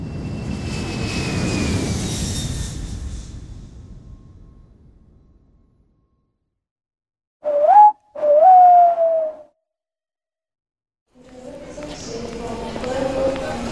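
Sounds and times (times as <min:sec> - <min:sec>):
airplane with whining engine flying overhead: 0:00.0 - 0:03.9
short whistling tone: 0:07.4 - 0:09.5.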